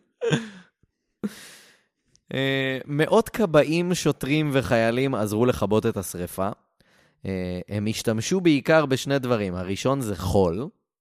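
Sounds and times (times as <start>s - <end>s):
person yawning aloud: 0.2s - 1.5s
speech: 0.3s - 0.5s, 2.3s - 6.6s, 7.2s - 10.8s.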